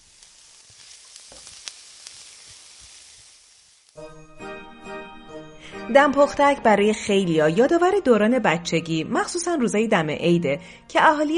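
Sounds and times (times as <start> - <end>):
fava beans sizzling in a hot pan on a gas stove: 0.0 - 4.6
speech: 4.0 - 4.5, 5.9 - 11.3.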